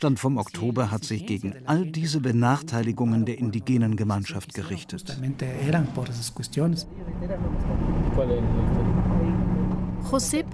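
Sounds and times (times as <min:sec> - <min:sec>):
speech: 0:00.0 - 0:09.1, 0:10.0 - 0:10.5
car engine and road rumble on the road from Riobamba: 0:06.8 - 0:10.5.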